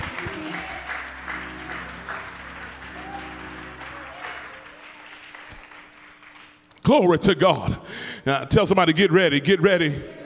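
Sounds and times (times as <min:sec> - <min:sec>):
sustained low keyboard or organ tones: 0:00.0 - 0:06.6
audience clapping: 0:00.0 - 0:07.0
speech: 0:06.9 - 0:10.2.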